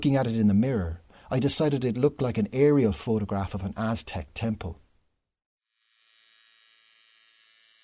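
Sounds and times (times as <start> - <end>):
speech: 0.0 - 4.8
tattoo machine buzzing while tattooing black lines onto a shoulder: 5.6 - 7.8.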